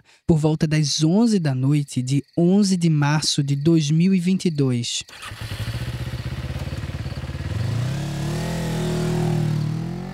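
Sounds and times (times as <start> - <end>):
speech: 0.1 - 5.8
motorcycle engine idling and revving: 5.1 - 10.1.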